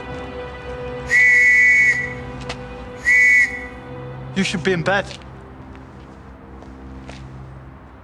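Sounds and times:
boy blowing whistle blasts: 1.1s - 2.3s, 3.0s - 3.8s
speech: 4.4s - 5.3s.

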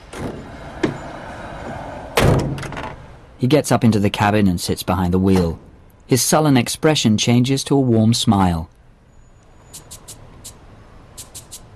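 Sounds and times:
van back doors slamming shut with a metallic rattle: 0.1s - 1.0s, 1.7s - 3.1s
speech: 3.4s - 8.8s.

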